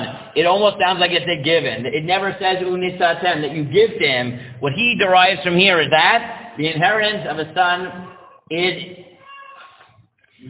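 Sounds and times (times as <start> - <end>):
speech: 0.4 - 9.1
cat meowing: 9.2 - 9.9.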